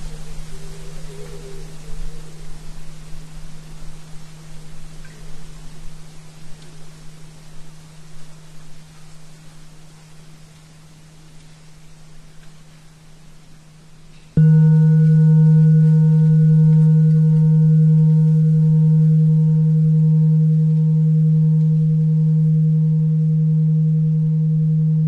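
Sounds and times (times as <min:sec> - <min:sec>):
faint hiss: 0:00.0 - 0:25.0
steady low 77.4 Hz test tone: 0:14.4 - 0:25.0.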